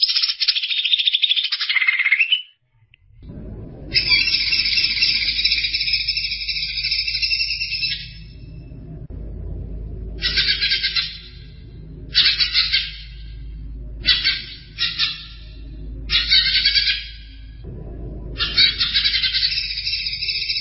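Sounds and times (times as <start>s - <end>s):
greater green leafbird song: 0.0s - 2.5s, 4.0s - 8.3s, 10.2s - 11.5s, 12.1s - 13.3s, 14.0s - 17.4s, 18.4s - 20.6s
low background hum: 2.7s - 20.6s.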